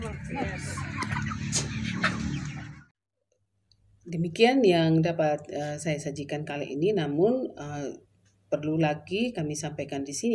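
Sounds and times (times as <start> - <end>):
several chickens clucking and murmuring: 0.0 - 2.9
speech: 4.1 - 10.3.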